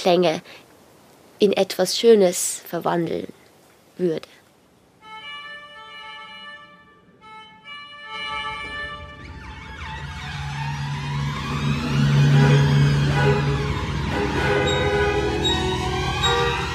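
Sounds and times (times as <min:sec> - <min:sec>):
speech: 0:00.0 - 0:00.6, 0:01.4 - 0:03.4, 0:04.0 - 0:04.4
emergency vehicle siren: 0:08.0 - 0:16.7
heavy traffic rumble: 0:08.1 - 0:16.7.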